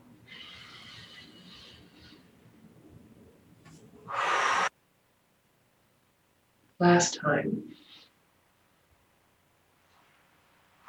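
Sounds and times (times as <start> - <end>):
person doing a deep forceful breathing exercise: 0.3 - 2.5, 4.1 - 4.7
speech: 6.8 - 7.8.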